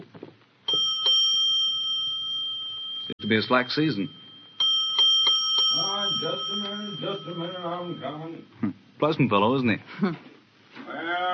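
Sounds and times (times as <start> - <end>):
hotel doorbell in San Diego ringing ding dong: 0.7 - 8.4
speech: 3.3 - 4.2, 6.2 - 10.3.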